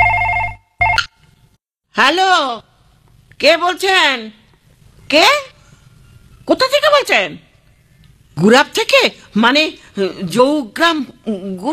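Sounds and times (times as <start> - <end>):
landline telephone ringing with electronic trill at home: 0.0 - 1.2
speech: 2.0 - 2.7, 3.4 - 4.4, 5.1 - 5.5, 6.5 - 7.5, 8.4 - 11.7.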